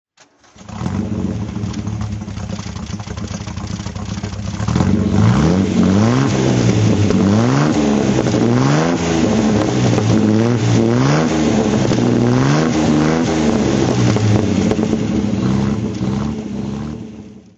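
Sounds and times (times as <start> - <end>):
Healey 3000 MkII engine throttle revving: 0.5 - 17.5.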